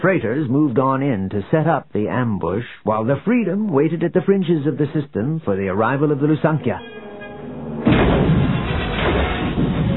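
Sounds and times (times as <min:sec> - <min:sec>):
speech: 0:00.0 - 0:07.0
heavy blast: 0:07.7 - 0:09.9
missiles exploding against a starship's shield in a space battle: 0:07.8 - 0:09.9.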